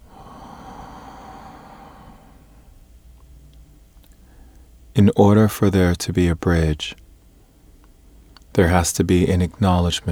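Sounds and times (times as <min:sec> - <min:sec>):
deep breath drawn in and let out during a guided meditation: 0:00.0 - 0:03.1
speech: 0:05.0 - 0:07.0, 0:08.6 - 0:10.1.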